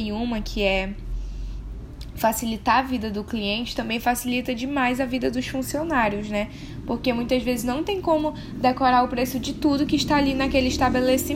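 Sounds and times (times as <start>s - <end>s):
speech: 0.0s - 1.1s, 2.2s - 11.3s
motorcycles rumbling past outside: 4.4s - 11.3s.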